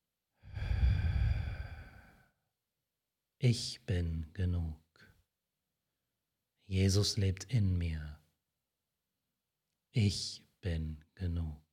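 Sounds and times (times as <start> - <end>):
slow exhaling breath during a guided breathing prayer: 0.4 - 2.3
speech: 3.4 - 4.8, 6.7 - 8.2, 10.0 - 11.7.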